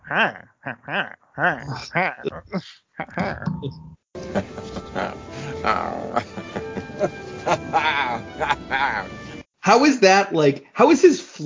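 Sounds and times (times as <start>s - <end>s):
voice imitating gargling and drooling noises: 0.0s - 4.0s
speech: 0.1s - 2.8s, 9.7s - 11.4s
laughter: 0.1s - 3.5s, 4.2s - 9.4s.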